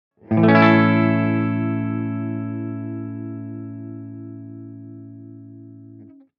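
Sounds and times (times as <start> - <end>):
clean electric guitar: 0.2 - 6.3.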